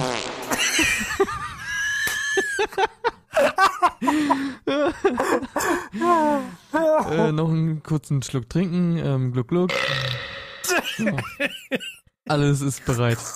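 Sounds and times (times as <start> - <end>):
fart-like blurts made with the mouth: 0.0 - 0.6, 9.7 - 10.7
people giggling and laughing: 0.5 - 6.0, 10.7 - 12.0
speech: 7.1 - 13.3.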